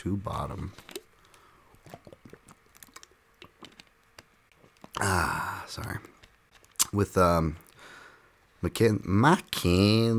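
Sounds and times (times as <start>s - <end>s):
speech: 0.0s - 1.0s, 5.0s - 6.1s, 6.9s - 7.6s, 8.6s - 10.1s
person sipping and gulping a drink: 0.7s - 6.2s
wet mouth clicks: 1.7s - 5.1s
loud breathy sigh of relief: 5.0s - 5.7s.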